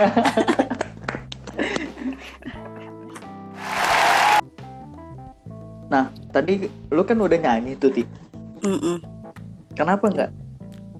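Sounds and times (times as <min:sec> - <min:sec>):
speech: 0:00.0 - 0:00.6, 0:05.9 - 0:09.1, 0:09.8 - 0:10.4
hand-clapping applause: 0:03.6 - 0:04.4.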